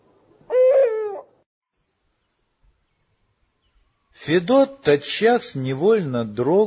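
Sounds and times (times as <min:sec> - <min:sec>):
eagle-owl hooting: 0:00.4 - 0:01.4
speech: 0:04.2 - 0:06.6.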